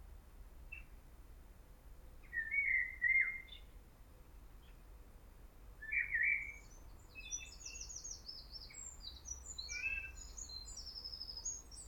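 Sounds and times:
steady low background noise: 0:00.0 - 0:11.8
common blackbird Turdus merula song with whistled phrase and squeaky twittering: 0:02.2 - 0:03.7, 0:05.8 - 0:11.8.

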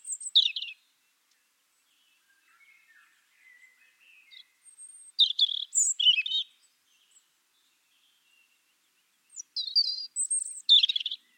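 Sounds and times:
European robin Erithacus rubecula singing high thin warbled phrases: 0:00.0 - 0:11.3.

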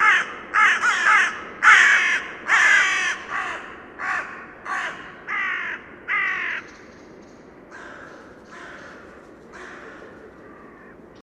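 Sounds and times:
Carrion Crow cawing harshly: 0:00.0 - 0:06.7, 0:07.7 - 0:11.0.

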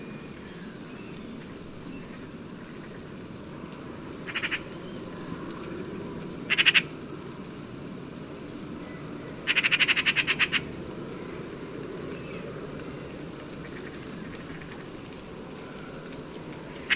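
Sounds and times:
Eurasian magpie Pica pica giving harsh machine-gun chatter: 0:04.3 - 0:04.7, 0:06.5 - 0:06.9, 0:09.5 - 0:10.7.

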